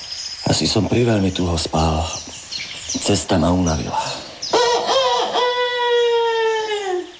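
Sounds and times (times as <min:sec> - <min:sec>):
speech: 0:00.6 - 0:04.2
rooster crowing: 0:04.5 - 0:07.1.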